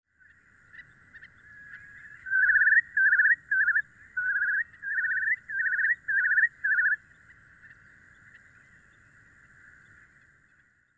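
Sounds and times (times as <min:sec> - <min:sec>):
whimbrel calling: 0:00.2 - 0:07.0.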